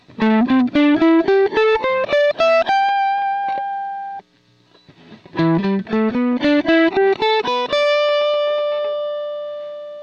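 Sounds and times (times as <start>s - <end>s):
guitar playing minor pentatonic: 0.0s - 4.2s, 5.0s - 10.0s.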